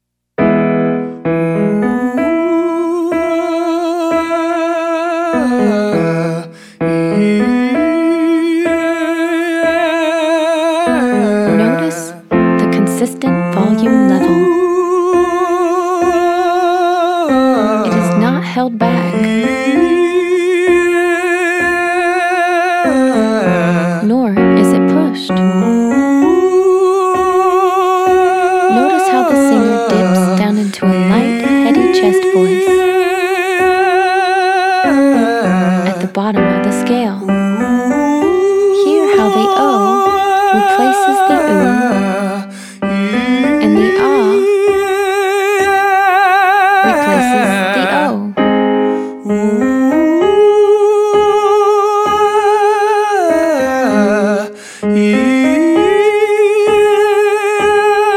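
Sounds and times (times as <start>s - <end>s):
man singing broad vowel changes exercise: 1.0s - 58.1s.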